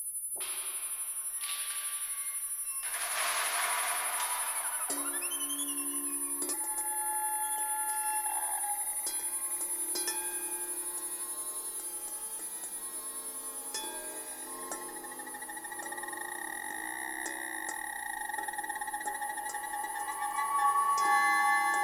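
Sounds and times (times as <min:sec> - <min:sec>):
oscillating vibrato tone: 0:02.1 - 0:21.8.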